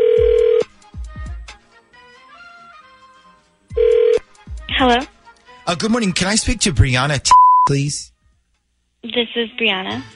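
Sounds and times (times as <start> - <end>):
phone line ring tones on an outgoing call: 0.0 - 0.6, 3.8 - 4.2
speech: 4.8 - 8.1, 9.1 - 10.1.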